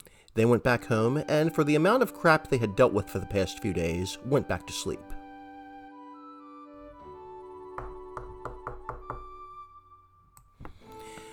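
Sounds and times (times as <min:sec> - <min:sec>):
steady sustained musical background: 0:00.1 - 0:11.3
speech: 0:00.4 - 0:05.2
firm knocking on a door: 0:07.8 - 0:09.4.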